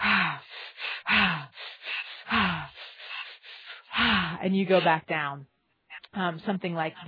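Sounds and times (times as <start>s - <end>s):
person breathing deeply in a breath ladder: 0.0s - 4.9s
speech: 4.4s - 5.5s, 6.1s - 7.0s.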